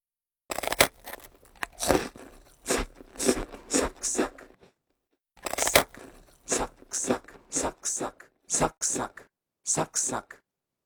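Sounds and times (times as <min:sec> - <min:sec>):
crisp food being bitten and crunched: 0:00.5 - 0:04.7, 0:05.4 - 0:08.2.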